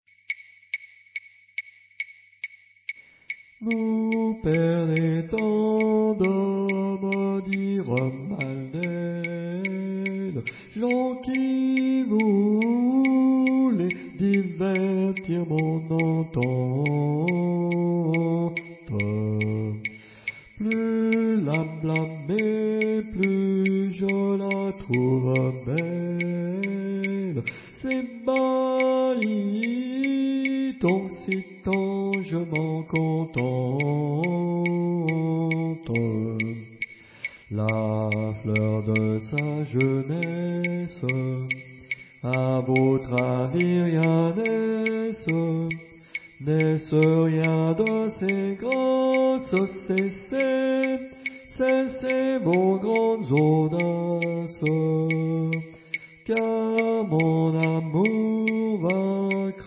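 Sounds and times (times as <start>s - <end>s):
person chanting: 3.6s - 59.6s.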